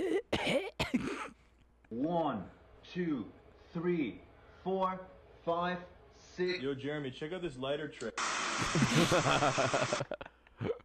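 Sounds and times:
person coughing after spraying cologne: 0.0s - 1.4s
speech: 2.1s - 8.1s, 8.7s - 10.3s
laughter: 8.6s - 10.8s.

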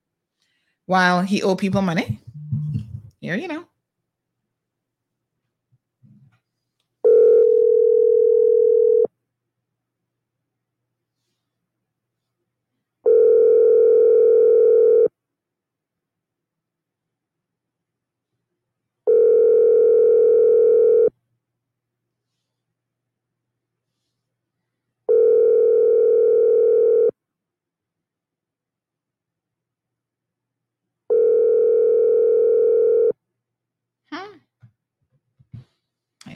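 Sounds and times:
speech: 0.9s - 2.2s, 3.3s - 3.7s
phone ringback tone from an unanswered call: 7.0s - 9.1s, 13.1s - 15.1s, 19.1s - 21.1s, 25.1s - 27.1s, 31.1s - 33.1s.

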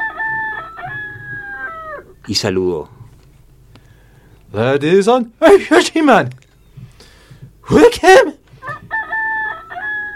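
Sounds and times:
rooster crowing: 0.0s - 2.2s, 8.6s - 10.1s
speech: 2.3s - 3.0s, 4.5s - 6.4s, 7.7s - 8.4s.

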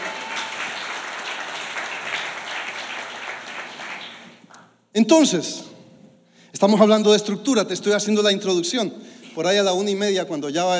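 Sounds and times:
crowd applauding: 0.0s - 4.6s
speech: 5.0s - 5.7s, 6.6s - 10.7s.

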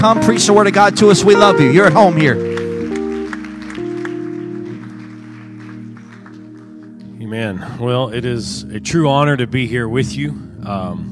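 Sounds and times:
speech: 0.0s - 2.6s, 7.4s - 11.1s
sustained organ-like chords: 0.0s - 11.1s
audience clapping hands in welcome: 1.4s - 7.2s.

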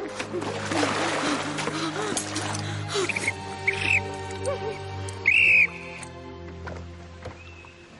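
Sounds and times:
water splashing and sloshing around a swimmer: 0.0s - 4.5s
trembling whistle blown by a woman swimming in water: 5.2s - 6.1s.

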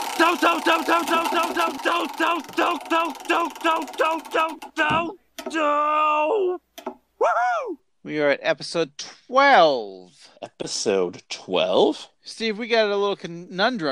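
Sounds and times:
spinning episode wheel clicking: 0.0s - 5.6s
speech: 0.2s - 13.9s.

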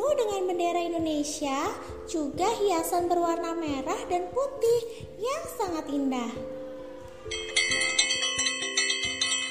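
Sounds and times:
speech: 0.1s - 6.5s, 7.3s - 8.0s
electric school bell ringing: 7.3s - 9.4s.

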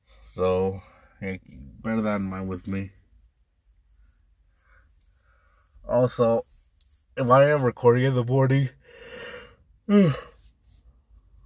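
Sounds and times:
quiet breathing: 0.0s - 1.5s, 3.8s - 5.9s, 8.7s - 11.0s
speech: 0.3s - 3.0s, 5.9s - 6.5s, 7.2s - 9.3s, 9.9s - 10.3s
person yawning with voiced groan: 9.9s - 10.3s.

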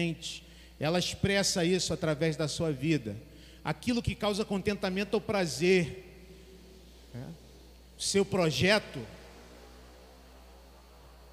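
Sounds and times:
speech: 0.0s - 6.1s, 7.1s - 7.4s, 8.0s - 9.2s
motorcycle engine droning: 4.1s - 11.3s.

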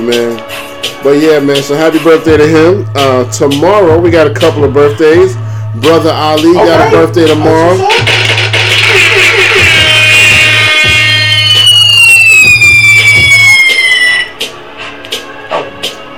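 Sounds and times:
steady hip hop beat: 0.0s - 16.1s
speech: 0.1s - 8.2s
DJ bomb drop sound effect with whistling tones sliding downward: 6.6s - 14.3s.

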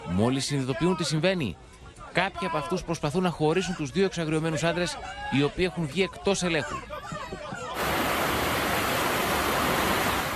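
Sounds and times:
speech: 0.2s - 7.4s
roar of rushing floodwater: 7.8s - 10.3s.

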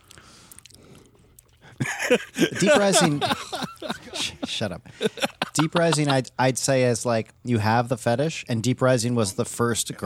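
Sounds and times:
chewing food: 0.0s - 1.8s
laughter: 1.8s - 6.3s
speech: 2.1s - 10.0s.

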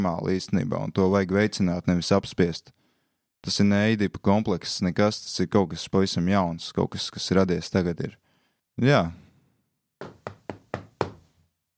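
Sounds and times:
speech: 0.0s - 2.8s, 3.4s - 8.2s, 8.8s - 9.2s
loud sharp knocks on a door by security police: 10.0s - 11.3s.

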